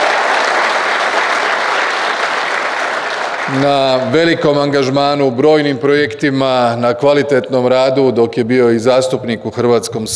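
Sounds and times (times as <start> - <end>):
audience clapping at a political party gathering: 0.0 - 4.9
speech: 3.5 - 10.1.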